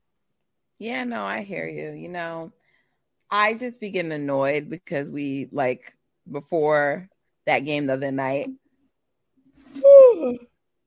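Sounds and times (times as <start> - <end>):
speech: 0.8 - 2.6, 3.3 - 8.6, 10.2 - 10.5
person yawning: 9.7 - 10.5.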